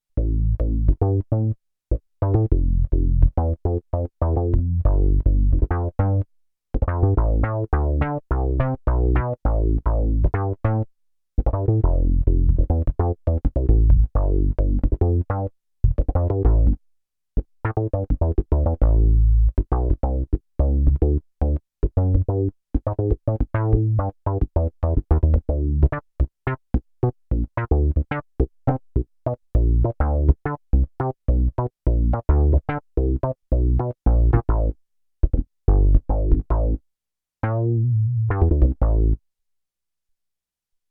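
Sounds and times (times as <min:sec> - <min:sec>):
Roland JX-8P synth bass: 0:00.2 - 0:01.6, 0:02.2 - 0:06.2, 0:06.8 - 0:10.8, 0:11.4 - 0:16.8, 0:17.7 - 0:26.6, 0:27.3 - 0:36.8, 0:37.4 - 0:39.2.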